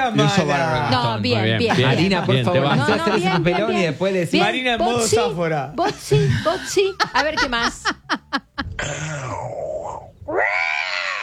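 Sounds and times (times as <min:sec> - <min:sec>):
speech: 0:00.0 - 0:08.0, 0:08.8 - 0:09.5
laughter: 0:00.2 - 0:03.9, 0:05.8 - 0:09.2
person imitating a big cat roar: 0:08.8 - 0:11.2.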